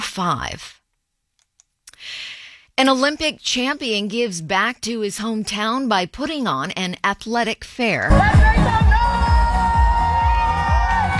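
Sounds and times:
speech: 0:00.2 - 0:00.8, 0:02.8 - 0:08.9
loud crowd cheering and shouting through a cheer tunnel: 0:08.1 - 0:11.1
rhythmic clapping or stomping: 0:08.1 - 0:11.1.

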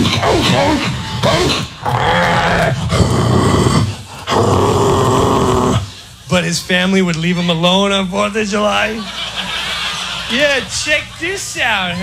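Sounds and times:
German Shepherd dog growling and snarling: 0:00.0 - 0:05.9
speech: 0:06.3 - 0:09.5, 0:10.3 - 0:12.0
laughter: 0:08.6 - 0:12.0.

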